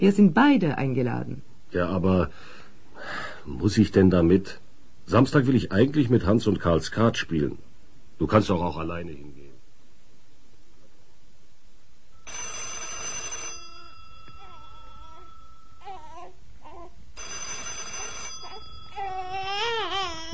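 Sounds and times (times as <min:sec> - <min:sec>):
speech: 0:00.0 - 0:09.4
telephone ringing with electronic tones: 0:12.2 - 0:16.2, 0:17.2 - 0:20.3
small child babbling: 0:14.4 - 0:17.0, 0:18.4 - 0:20.3.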